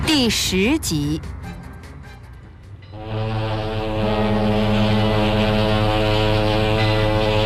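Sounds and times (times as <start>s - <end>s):
speech: 0.2s - 1.4s
passenger ship's horn blast: 2.9s - 7.4s.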